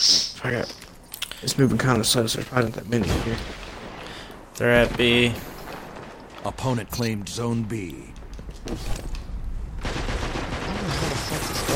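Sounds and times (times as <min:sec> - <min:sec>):
speech: 0:00.4 - 0:00.8, 0:01.4 - 0:03.7, 0:04.6 - 0:05.5, 0:06.4 - 0:09.1
fusion rifle fire in a team-based shooter video game: 0:03.0 - 0:11.7.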